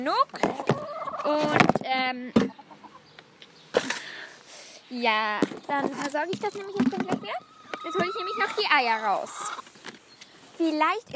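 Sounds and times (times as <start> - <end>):
speech: 0.0 - 0.6, 1.2 - 2.6, 4.9 - 9.6, 10.6 - 11.1
chickens clucking: 0.3 - 1.8, 2.4 - 4.2, 5.6 - 9.9
chicken squawking: 0.6 - 1.3, 7.2 - 9.7.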